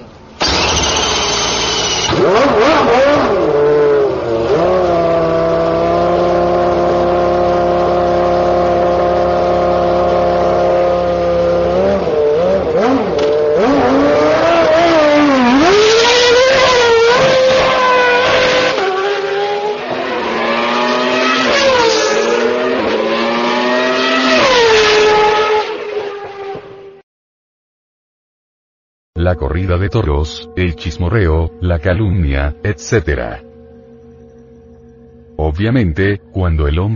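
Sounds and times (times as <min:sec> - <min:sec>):
race car engines revving at an auto race: 0:00.0 - 0:27.0
speech: 0:29.3 - 0:33.5, 0:35.6 - 0:36.9.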